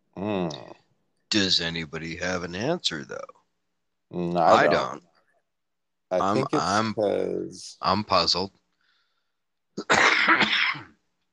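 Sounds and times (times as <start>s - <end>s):
speech: 1.3s - 3.4s, 4.1s - 5.1s, 6.1s - 8.6s, 9.8s - 10.9s
harsh cough: 9.8s - 11.0s
raspy throat clearing: 9.8s - 11.0s.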